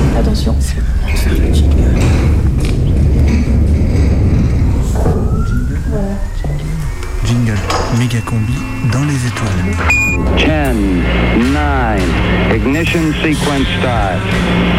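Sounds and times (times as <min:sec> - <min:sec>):
speech: 0:00.2 - 0:02.0, 0:07.3 - 0:14.7
observatory dome door sliding open with a heavy mechanical rumble: 0:01.0 - 0:08.9.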